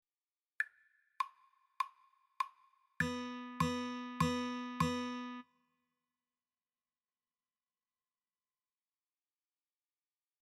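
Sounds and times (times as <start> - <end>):
rhythm guitar intro: 3.0 - 5.4.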